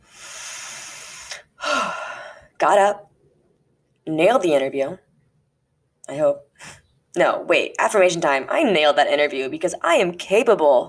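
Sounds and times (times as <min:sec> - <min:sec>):
deep breath in and out: 0:00.0 - 0:02.5
speech: 0:02.6 - 0:03.1, 0:04.0 - 0:05.0, 0:06.1 - 0:10.8.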